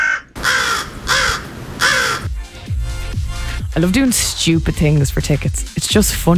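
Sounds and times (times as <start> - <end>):
crow cawing: 0.0 - 2.3
speech: 3.8 - 6.3.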